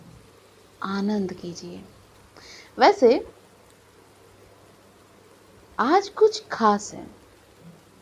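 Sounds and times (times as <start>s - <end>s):
gentle monsoon rain falling: 0.0s - 8.0s
speech: 0.8s - 2.0s, 2.8s - 3.4s, 5.8s - 7.2s.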